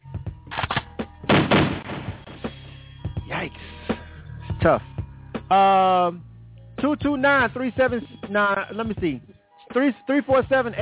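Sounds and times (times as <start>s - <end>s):
double-barrel shotgun blasts in a video game: 0.5s - 2.3s
speech: 4.6s - 4.9s, 5.5s - 10.8s.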